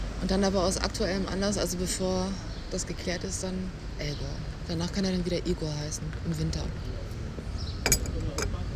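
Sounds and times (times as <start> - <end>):
speech: 0.2 - 7.1
cup moved on a hard surface clinking: 7.9 - 8.5.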